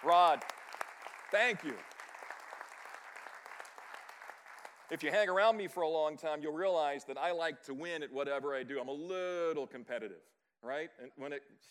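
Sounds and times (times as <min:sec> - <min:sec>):
speech: 0:00.0 - 0:00.6, 0:01.3 - 0:01.9, 0:04.9 - 0:11.6
audience applause: 0:00.0 - 0:05.0.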